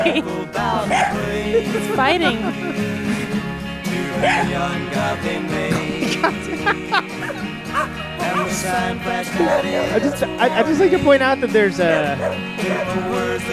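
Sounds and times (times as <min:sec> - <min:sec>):
speech: 0:00.0 - 0:03.1, 0:04.2 - 0:13.5
laughter: 0:00.0 - 0:13.5
dog barking and yipping: 0:00.8 - 0:01.2, 0:04.2 - 0:04.6, 0:07.2 - 0:10.2, 0:11.8 - 0:13.1.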